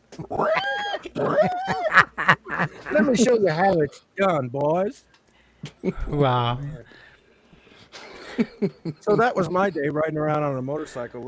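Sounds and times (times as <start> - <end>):
person imitating a pig squealing: 0.1 - 2.1
laughter: 0.2 - 3.8, 5.6 - 6.5, 8.0 - 9.8
speech: 0.2 - 7.0, 7.9 - 11.2.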